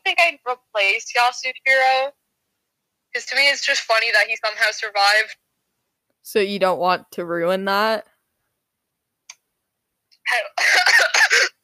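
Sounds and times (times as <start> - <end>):
speech: 0.3 - 2.2, 3.1 - 5.4, 6.2 - 8.1, 10.3 - 11.0
person coughing while choking on water: 10.3 - 11.6.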